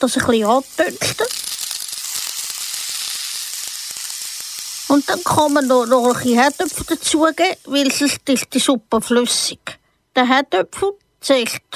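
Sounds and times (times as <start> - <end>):
speech: 0.0 - 1.4, 4.9 - 11.7
peeled cut pumpkin frying in a pan with onions and garlic: 0.0 - 8.6.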